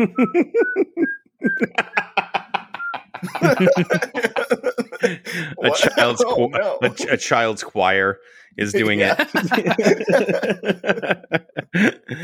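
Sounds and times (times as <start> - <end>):
person whistling a melody: 0.0 - 1.8
speech: 0.0 - 2.3, 3.2 - 12.2
laughter: 0.0 - 7.5, 8.8 - 12.2
overlapping chatter: 1.6 - 7.6, 8.6 - 11.1.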